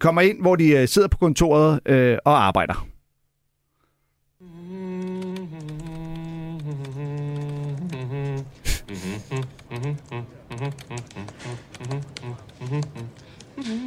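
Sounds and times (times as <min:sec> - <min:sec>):
speech: 0:00.0 - 0:02.9
person humming a tune: 0:04.4 - 0:13.8.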